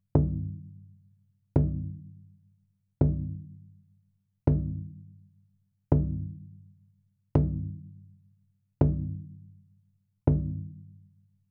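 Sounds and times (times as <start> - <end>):
big drum played by hands: 0.2 - 0.6, 1.6 - 2.0, 3.0 - 3.5, 4.5 - 4.9, 6.0 - 6.4, 7.4 - 7.8, 8.8 - 9.3, 10.3 - 10.7.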